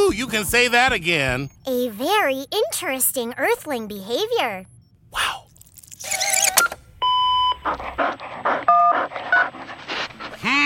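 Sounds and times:
speech: 0.1s - 5.4s
dog panting and snuffling during an accidental phone call: 7.5s - 10.5s.

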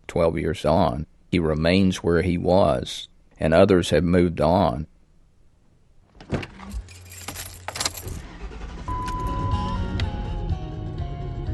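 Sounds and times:
speech: 0.1s - 4.9s, 6.3s - 6.5s
Lincoln Continental Town Car engine and road noise on highway: 6.0s - 11.5s
keys jangling inside a car: 6.6s - 8.2s.

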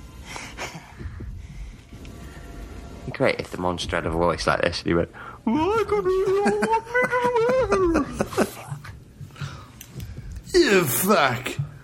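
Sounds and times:
heartbeat: 0.0s - 3.1s, 7.0s - 10.5s
speech: 3.1s - 8.5s, 10.7s - 11.6s
laughter: 6.0s - 8.9s.

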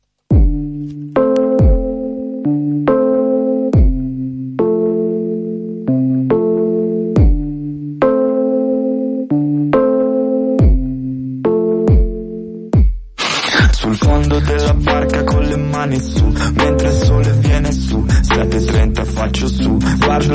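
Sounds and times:
repeating pattern of plucked or keyboard notes: 0.3s - 12.9s, 14.0s - 20.3s.

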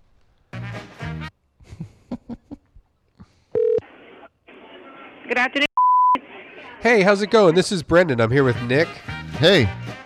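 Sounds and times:
phone line ringing: 3.6s - 3.8s
speech: 5.3s - 5.7s, 6.8s - 9.8s.

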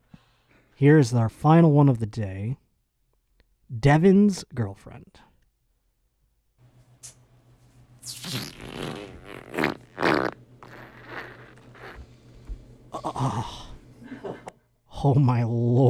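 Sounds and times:
speech: 0.8s - 2.6s, 3.7s - 5.3s, 8.2s - 9.0s, 13.1s - 13.6s, 15.0s - 15.8s
long sputtering fart with a wet squirt: 8.0s - 12.1s.

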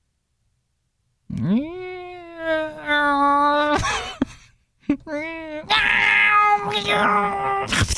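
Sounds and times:
person imitating a panicked cat yowling: 1.3s - 3.8s, 5.1s - 7.8s.

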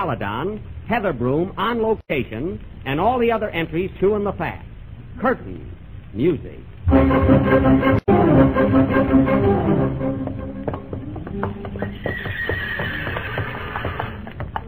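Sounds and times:
speech: 0.0s - 10.5s
horse hooves clopping in a racetrack paddock: 9.2s - 14.6s
horses whinnying and neighing in a racetrack paddock: 11.4s - 14.3s.

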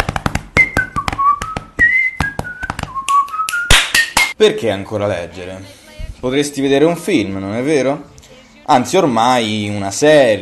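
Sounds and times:
crisp rhythmic tapping percussion: 0.0s - 4.4s
bright whistled melody of podcast intro jingle: 0.6s - 4.2s
speech: 4.4s - 8.1s, 8.7s - 10.4s.

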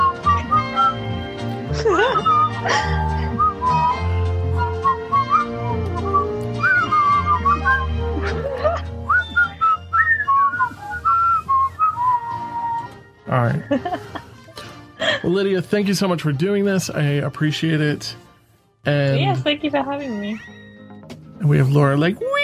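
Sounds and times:
person whistling a wandering melodic tune: 0.0s - 13.2s
laughter: 1.7s - 3.5s, 8.2s - 9.0s, 13.5s - 15.5s
speech: 15.3s - 18.2s, 18.8s - 20.6s, 21.4s - 22.3s.

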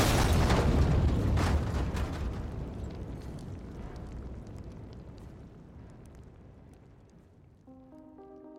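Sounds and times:
explosion: 0.0s - 6.4s.

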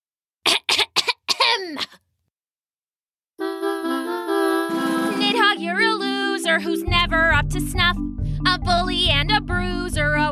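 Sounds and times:
dramatic throat clearing: 0.5s - 2.0s
speech: 1.6s - 2.0s, 6.6s - 10.3s
steady harmonic tone: 3.4s - 6.6s.

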